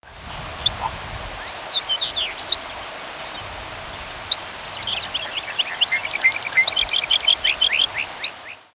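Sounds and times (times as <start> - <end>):
steady background hiss: 0.0 - 8.7
Thick-billed longspur giving high chips and tinkling twittering notes: 1.4 - 3.4, 4.2 - 8.7.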